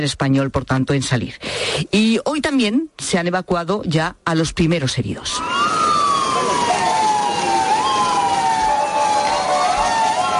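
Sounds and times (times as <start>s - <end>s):
speech: 0.0s - 5.8s
crowd noise: 5.4s - 10.3s
several ambulance sirens wailing: 5.4s - 10.3s
traffic noise: 5.4s - 10.3s.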